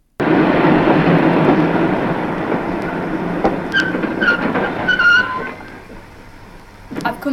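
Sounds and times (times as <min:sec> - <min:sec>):
high-pitched train brake squeals: 0:00.2 - 0:07.3
train rolling into a station, wheels rumbling on track: 0:00.2 - 0:07.3.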